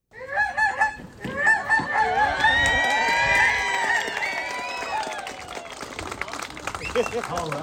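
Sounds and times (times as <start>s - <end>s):
people honking and squawking in imitation of geese: 0.1s - 2.4s
crowd chattering: 0.2s - 7.6s.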